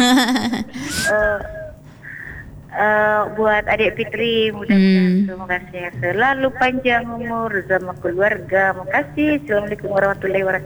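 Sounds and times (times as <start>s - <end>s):
baby whimpering: 0.0s - 1.8s
laughter: 0.0s - 2.5s
speech: 0.2s - 1.6s, 2.7s - 10.6s.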